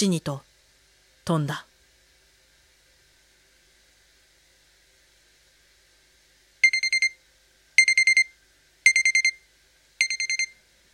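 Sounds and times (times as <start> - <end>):
speech: 0.0 - 0.5, 1.3 - 1.7
alarm clock beeping with high-pitched electronic pips: 6.6 - 7.2, 7.8 - 8.3, 8.9 - 9.4, 10.0 - 10.6.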